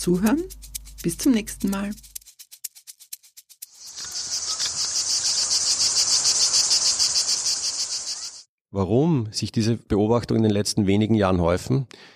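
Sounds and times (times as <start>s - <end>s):
speech: 0.0s - 2.1s, 8.7s - 12.1s
cicadas chirping with dry ticks and high-pitched buzz: 3.6s - 8.4s.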